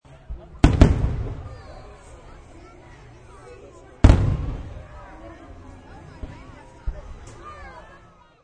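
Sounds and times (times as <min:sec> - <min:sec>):
crowd at fireworks: 0:00.0 - 0:08.4
big fireworks exploding: 0:00.4 - 0:02.5, 0:04.0 - 0:05.2.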